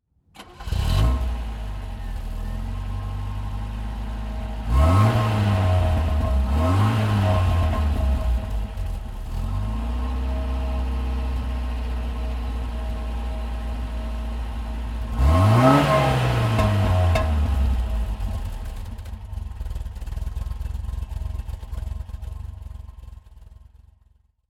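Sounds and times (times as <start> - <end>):
Opel Manta car: 0.2 - 24.4.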